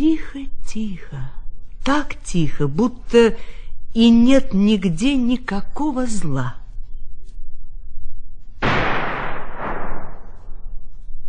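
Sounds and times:
speech: 0.0 - 6.6
single gunshot echoing in a forest: 8.6 - 10.5.

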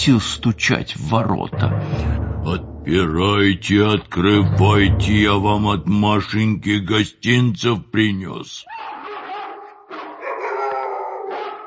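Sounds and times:
speech: 0.0 - 8.9
village dogs barking and howling at a bear: 8.7 - 11.6.

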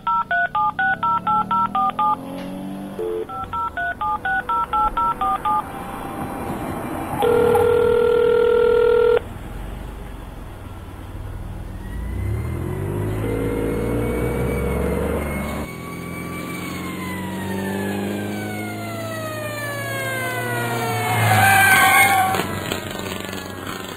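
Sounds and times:
ambulance siren wailing: 0.0 - 2.3, 3.0 - 9.2, 11.8 - 22.5
touch-tone phone keypad beeps: 0.0 - 2.4, 3.0 - 5.8, 7.2 - 9.2
ambulance engine rumbling: 0.0 - 23.9.

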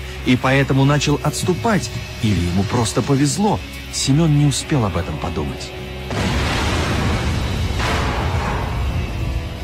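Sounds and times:
speech: 0.2 - 6.3
sharper blast: 6.1 - 9.3
loud rumbling explosion: 6.1 - 9.6.

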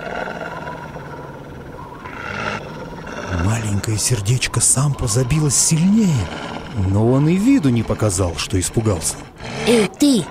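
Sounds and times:
wolf growling: 0.0 - 10.2
speech: 3.4 - 10.2.

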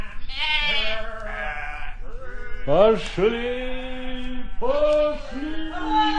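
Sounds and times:
sheep bleating: 0.3 - 2.0
speech: 2.7 - 3.9, 4.6 - 6.0.

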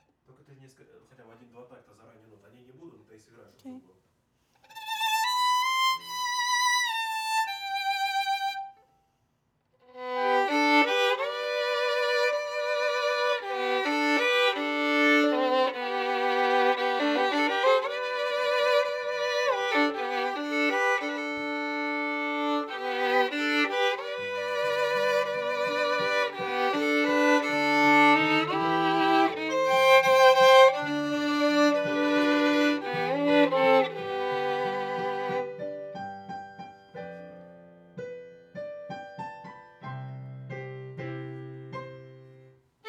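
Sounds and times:
viola in C minor: 4.6 - 8.8, 9.8 - 36.0.

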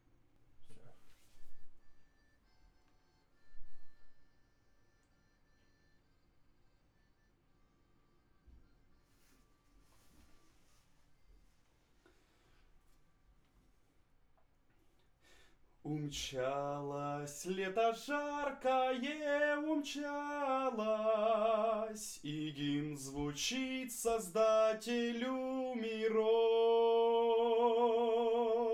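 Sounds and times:
vocal through condenser microphone: 15.9 - 28.7.

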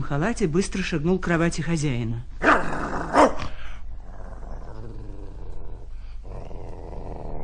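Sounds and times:
speech: 0.0 - 2.8
dog barking: 2.4 - 3.5
dog growling: 2.4 - 7.4.

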